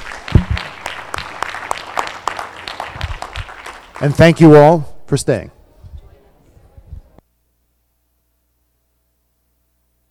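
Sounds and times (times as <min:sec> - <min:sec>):
conference audience applause for panelists: 0:00.0 - 0:04.5
speech: 0:04.0 - 0:05.6.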